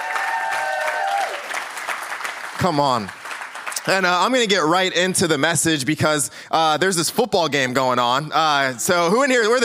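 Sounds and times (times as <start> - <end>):
room full of people applauding: 0.0 - 4.4
speech: 2.6 - 3.2, 3.9 - 9.6.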